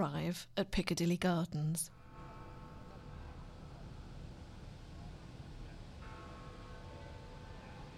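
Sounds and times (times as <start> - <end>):
speech: 0.0 - 2.0
tower clock chimes: 1.9 - 7.9.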